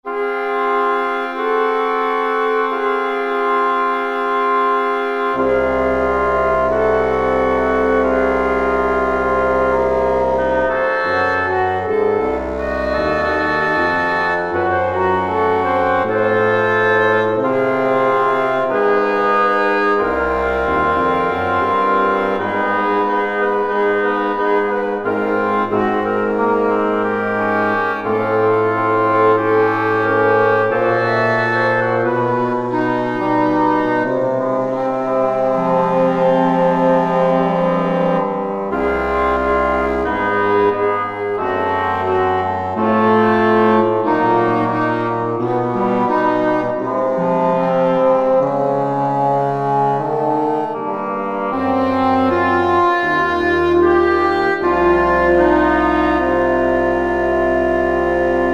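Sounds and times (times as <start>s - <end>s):
pump woodwind instrument: 0.0s - 58.5s.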